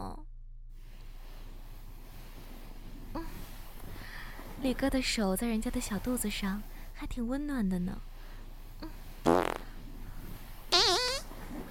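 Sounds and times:
speech: 4.6 - 8.1
farts: 9.2 - 9.8, 10.7 - 11.7.

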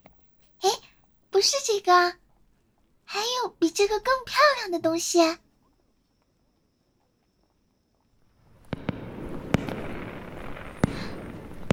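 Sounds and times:
speech: 1.4 - 2.2, 3.1 - 5.4
fireworks going off in sharp bangs: 8.4 - 11.7.

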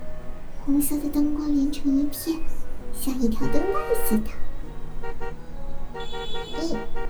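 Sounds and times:
steady low traffic rumble: 0.0 - 7.0
speech: 0.7 - 4.5, 6.0 - 7.0
car horns honking in a traffic jam at a backed-up intersection: 3.0 - 7.0.

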